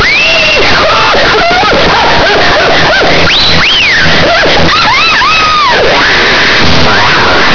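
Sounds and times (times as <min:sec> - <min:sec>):
laughter: 0:00.0 - 0:07.5
catcall whistle: 0:03.3 - 0:04.0.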